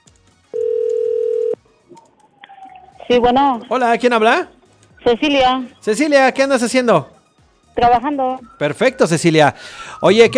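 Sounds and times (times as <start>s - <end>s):
telephone ringback tone: 0.6s - 1.6s
speech: 3.1s - 7.1s, 7.8s - 10.3s.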